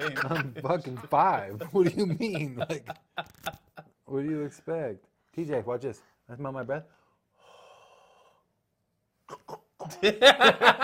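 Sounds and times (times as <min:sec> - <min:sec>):
laughter: 0:00.0 - 0:04.0, 0:09.8 - 0:10.8
speech: 0:00.0 - 0:07.0, 0:09.3 - 0:10.8
person gagging and retching: 0:09.3 - 0:10.0.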